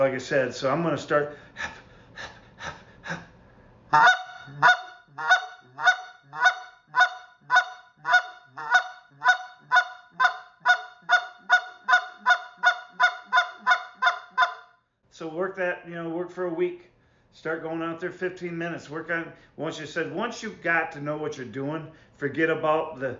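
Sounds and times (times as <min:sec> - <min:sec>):
speech: 0:00.0 - 0:01.8, 0:03.9 - 0:04.7, 0:16.3 - 0:23.1
goose call imitating geese, honks and clucks: 0:03.9 - 0:14.7.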